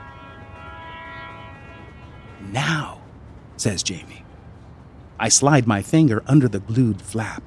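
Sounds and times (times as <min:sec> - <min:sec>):
train whistle: 0:00.0 - 0:03.1
train rumbling on tracks: 0:00.0 - 0:07.4
speech: 0:02.4 - 0:03.0, 0:03.6 - 0:04.3, 0:05.2 - 0:07.4.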